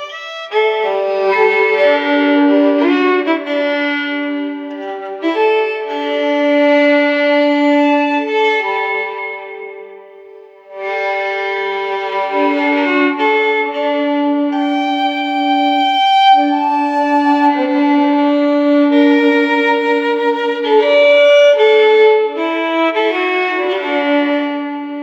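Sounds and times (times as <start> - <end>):
classical solo violin piece: 0.0 - 25.0.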